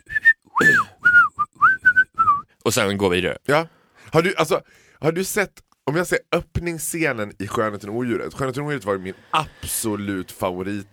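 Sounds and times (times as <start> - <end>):
person whistling a short clear tune: 0.0 - 2.5
speech: 0.6 - 0.9, 2.6 - 10.9.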